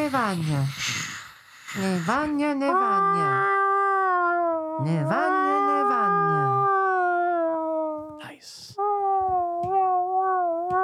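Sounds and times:
breathy noise: 0.0s - 3.4s
person imitating a howling dog: 0.0s - 8.2s, 8.8s - 10.8s
speech: 0.1s - 0.9s, 1.7s - 3.6s, 4.8s - 6.1s.

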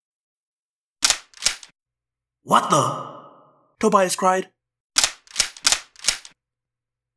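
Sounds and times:
speech: 2.4s - 3.1s, 3.8s - 4.6s
guns being cocked: 5.0s - 6.3s.

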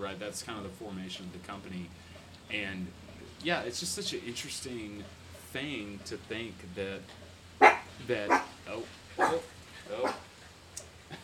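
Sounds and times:
speech: 0.0s - 7.2s, 8.0s - 10.3s
dogs barking as someone arrives home: 7.6s - 10.3s.

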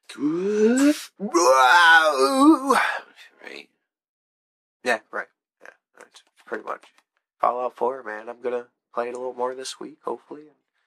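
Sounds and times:
speech: 0.2s - 0.6s, 7.8s - 10.6s
tired person yawning: 0.2s - 3.1s.

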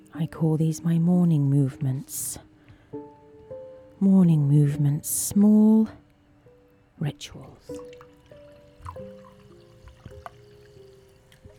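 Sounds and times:
speech: 0.1s - 2.5s, 4.0s - 6.0s, 7.0s - 7.9s
cold water trickling and sloshing in a cup: 7.5s - 11.5s.

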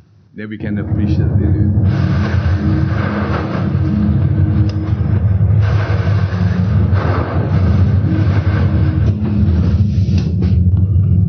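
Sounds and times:
speech: 0.4s - 2.0s
low rumble of a sea storm aboard a ship: 0.4s - 11.2s
ship engine droning in a sea storm: 0.5s - 11.2s.

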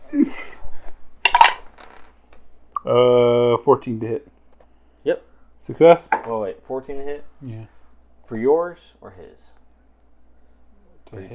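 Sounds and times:
dice rolled for attacks in a tabletop game: 1.3s - 1.7s
speech: 2.8s - 4.3s, 5.0s - 9.6s, 11.1s - 11.3s.

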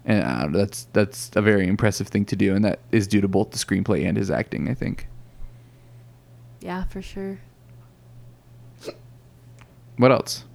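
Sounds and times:
low steady hum of room noise: 0.0s - 10.5s
speech: 0.1s - 5.1s, 6.6s - 7.5s, 10.0s - 10.5s
hiccup: 8.8s - 9.1s.

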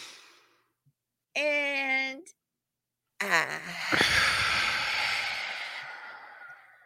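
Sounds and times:
speech: 1.4s - 1.6s, 3.2s - 4.1s
deep breath drawn in through the airways: 3.7s - 6.8s.

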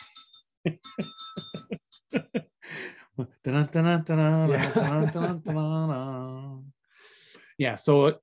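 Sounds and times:
bicycle bell ringing: 0.0s - 2.2s
laughter: 1.5s - 2.5s, 4.5s - 5.8s
speech: 3.4s - 6.2s, 7.6s - 8.2s.

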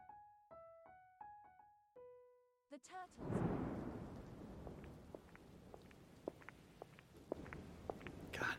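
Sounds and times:
speech: 2.7s - 3.9s
steady rain: 3.2s - 8.5s.

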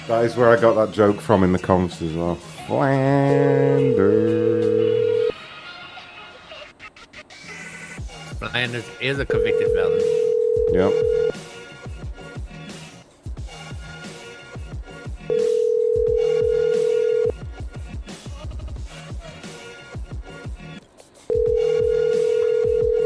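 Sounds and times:
speech: 0.0s - 5.0s, 8.4s - 11.4s
busy music: 0.0s - 6.7s, 7.3s - 23.0s
cell phone ringing: 3.4s - 5.4s, 9.3s - 11.4s, 15.3s - 17.3s, 21.3s - 23.0s.

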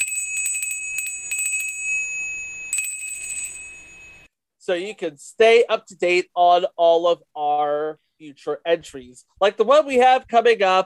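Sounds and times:
high-pitched notification bell dings: 0.0s - 4.3s
speech: 4.7s - 10.8s.

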